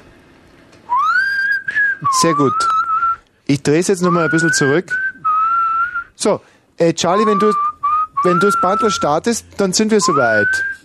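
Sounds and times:
person whistling a sustained rising tone during sound check: 0.9 - 3.2, 4.0 - 6.2, 7.1 - 9.1, 10.0 - 10.8
speech: 2.0 - 2.7, 3.5 - 5.0, 6.2 - 7.6, 8.2 - 10.8.

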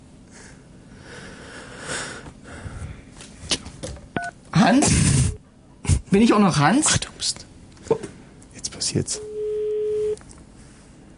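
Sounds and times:
faint noise: 0.0 - 11.1
speech: 4.7 - 5.2, 6.1 - 7.5, 8.9 - 9.3
telephone line tone during a live phone call: 9.3 - 10.2.

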